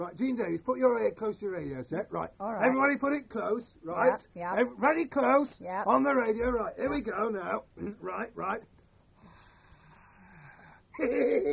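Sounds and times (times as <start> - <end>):
speech: 0.0 - 8.7, 11.0 - 11.5
heavy breathing close to a microphone: 9.2 - 11.0.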